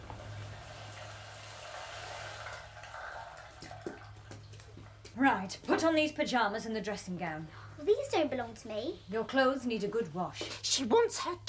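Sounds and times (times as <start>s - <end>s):
shower water running: 0.0s - 4.9s
speech: 5.2s - 11.4s.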